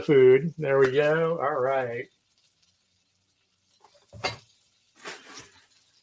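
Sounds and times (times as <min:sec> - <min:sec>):
speech: 0:00.0 - 0:02.2
buttered bread frying in a pan: 0:00.0 - 0:06.0
utensil clinking against the cookware: 0:03.8 - 0:06.0.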